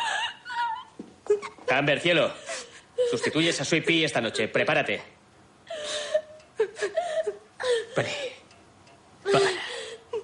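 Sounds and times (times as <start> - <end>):
woman crying and whimpering with high-pitched sobbing wails: 0.0 - 1.7, 2.3 - 4.6, 5.6 - 8.4, 9.2 - 10.2
speech: 1.7 - 2.4, 3.0 - 5.2, 8.0 - 8.2.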